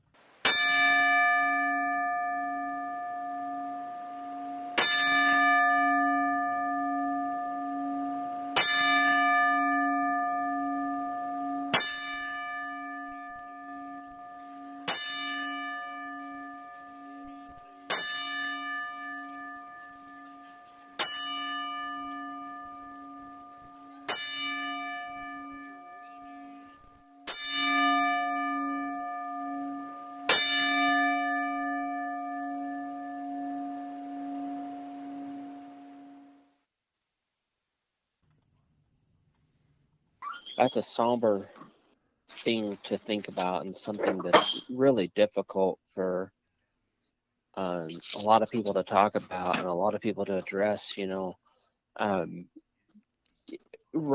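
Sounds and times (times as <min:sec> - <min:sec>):
single memorial bell tolling: 0:00.5 - 0:36.4
speech: 0:40.6 - 0:41.6, 0:42.4 - 0:46.4, 0:47.6 - 0:51.4, 0:52.0 - 0:52.6, 0:53.5 - 0:54.1.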